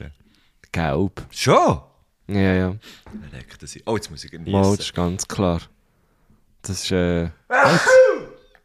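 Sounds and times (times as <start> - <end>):
speech: 0.0 - 5.8, 6.6 - 8.3
single loud sneeze: 7.5 - 8.5.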